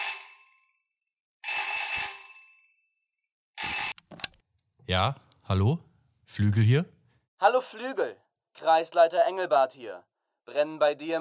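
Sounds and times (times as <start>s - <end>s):
telephone bell ringing with an incoming call at night: 0.0s - 3.0s, 3.6s - 4.0s
speech: 4.9s - 11.1s.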